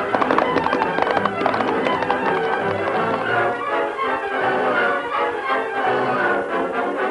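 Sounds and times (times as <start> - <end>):
horse galloping off with drumming hoofbeats: 0.0 - 3.8
music: 0.0 - 7.0.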